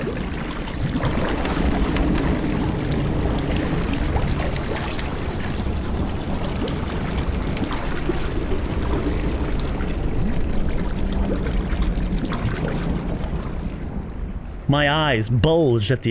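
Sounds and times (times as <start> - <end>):
river water churning and rushing from a large mass surging up: 0.0 - 16.0
speech: 14.7 - 16.0.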